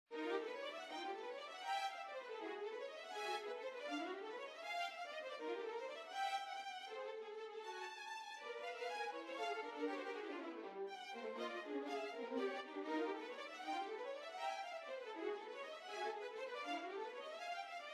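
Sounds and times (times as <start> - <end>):
duo of two violins playing: 0.2 - 17.9.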